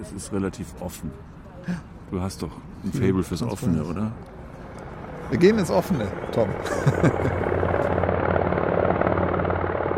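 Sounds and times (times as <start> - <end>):
speech: 0.0 - 4.4, 5.3 - 7.6
helicopter rotors roaring behind a building: 2.9 - 9.9
laughter: 6.6 - 7.7.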